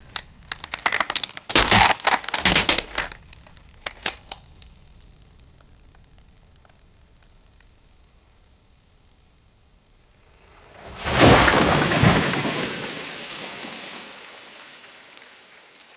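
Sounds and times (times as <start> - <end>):
dead wood cracking slowly: 0.0 - 15.9
dead wood falling with thud: 10.8 - 13.8.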